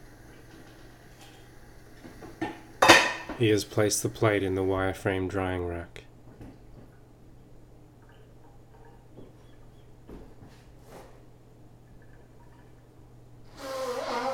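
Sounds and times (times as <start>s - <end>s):
low steady hum: 0.0s - 13.5s
speech: 3.4s - 6.0s
man blowing his nose with a nasal honk: 13.5s - 14.3s.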